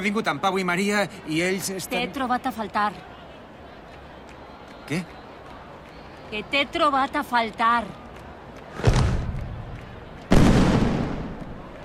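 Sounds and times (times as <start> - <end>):
speech: 0.0 - 3.2, 4.9 - 5.2, 6.3 - 8.0
firework warning bangs before a fireworks display: 10.3 - 11.6.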